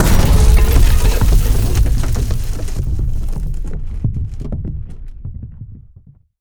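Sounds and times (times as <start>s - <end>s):
falling rubble: 0.0s - 4.8s
howitzer explosion impact: 0.0s - 5.3s.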